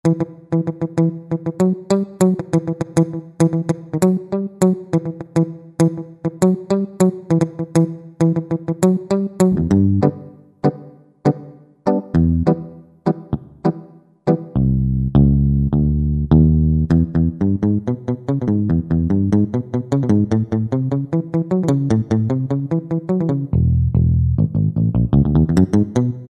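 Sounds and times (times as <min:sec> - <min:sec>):
synthesizer guitar big mute preset on a Yamaha EX5R: 0:00.0 - 0:26.2.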